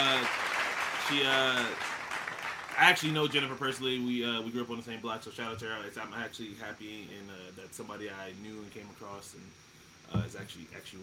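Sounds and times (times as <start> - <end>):
dense crowd applause: 0.0 - 3.6
speech: 1.1 - 1.9, 2.8 - 11.0.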